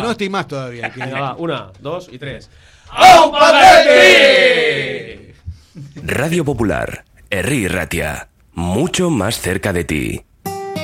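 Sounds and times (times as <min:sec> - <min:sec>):
speech: 0:00.0 - 0:10.3
group of voices shouting a team battle cry in unison: 0:02.9 - 0:05.3.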